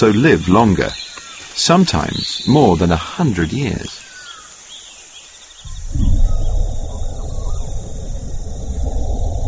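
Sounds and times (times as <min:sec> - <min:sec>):
speech: 0:00.0 - 0:01.0, 0:01.6 - 0:04.0
male kakapo booming mating call: 0:05.6 - 0:08.8.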